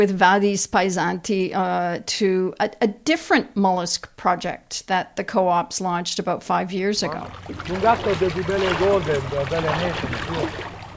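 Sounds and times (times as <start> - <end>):
speech: 0.0 - 10.7
person wading through shallow water in rubber overalls: 7.0 - 10.9.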